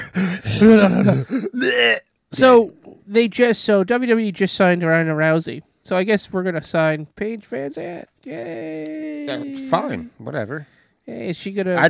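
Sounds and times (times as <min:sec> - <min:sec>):
person imitating a man's heavy breathing: 0:00.0 - 0:01.6, 0:08.3 - 0:10.1
speech: 0:00.6 - 0:11.8.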